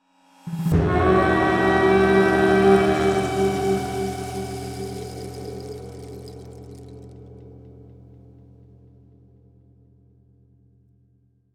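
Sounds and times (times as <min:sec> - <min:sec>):
warhorn: 0:00.5 - 0:07.0.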